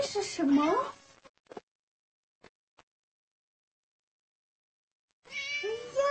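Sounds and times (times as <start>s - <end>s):
speech: 0.1s - 1.0s
cat meowing: 5.3s - 6.0s.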